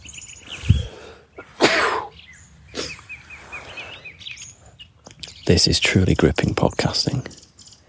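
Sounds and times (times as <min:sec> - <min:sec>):
birds chirping and trilling in an open field: 0:00.0 - 0:07.8
man sneezing outdoors in a field: 0:01.4 - 0:02.1
speech: 0:05.5 - 0:07.4.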